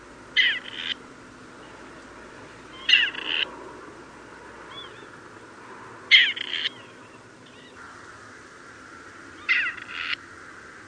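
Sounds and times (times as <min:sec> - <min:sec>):
faint steady background hiss: 0:00.0 - 0:10.8
Grey Partridge giving harsh grating creaky calls: 0:00.4 - 0:01.0, 0:02.7 - 0:03.5, 0:06.1 - 0:07.9, 0:09.4 - 0:10.2.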